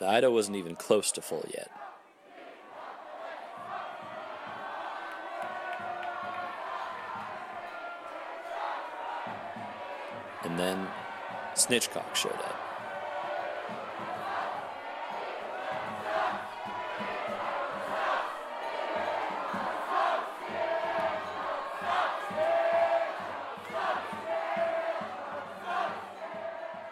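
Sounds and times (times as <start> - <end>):
busy noisy din of voices: 0.0 - 1.7, 11.6 - 12.6
speech: 0.0 - 2.0, 10.5 - 11.0, 11.6 - 12.7
crowd of team members chanting in unison as a joke: 1.6 - 26.9.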